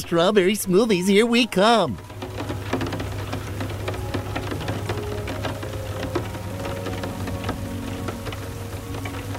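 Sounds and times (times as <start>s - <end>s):
steady rain: 0.0s - 9.3s
speech: 0.1s - 2.1s
faint tonal sounds: 0.5s - 9.3s
sharp drips and taps: 1.9s - 9.3s.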